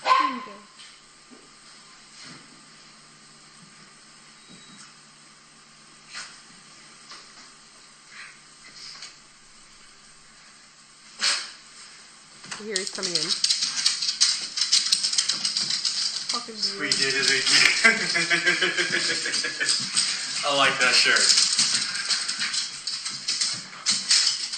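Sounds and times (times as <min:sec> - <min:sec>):
dog barking and yipping: 0:00.0 - 0:00.5
steady hum: 0:00.0 - 0:24.5
speech: 0:12.6 - 0:13.5, 0:16.5 - 0:21.4
laughter: 0:16.8 - 0:22.2.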